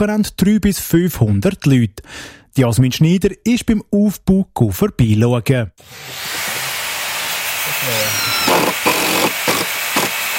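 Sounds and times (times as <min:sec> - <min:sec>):
speech: 0:00.0 - 0:06.4, 0:07.8 - 0:08.3
hammering at an open-air festival site next to a tennis court: 0:08.2 - 0:10.2.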